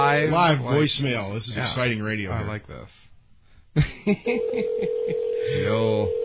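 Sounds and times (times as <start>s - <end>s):
speech: 0.2s - 3.1s, 3.7s - 6.2s
telephone ringback tone: 4.6s - 6.2s.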